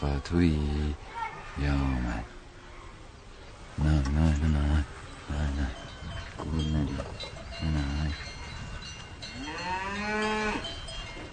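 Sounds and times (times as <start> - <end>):
speech: 0.0 - 2.4, 3.8 - 8.4
cow mooing as it is pulled into a house: 9.4 - 10.7.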